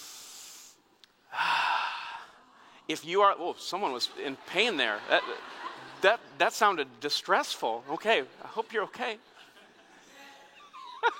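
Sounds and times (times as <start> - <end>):
group of people inhaling together: 0.0 - 2.9
speech: 2.9 - 9.3
laughter: 3.8 - 11.1.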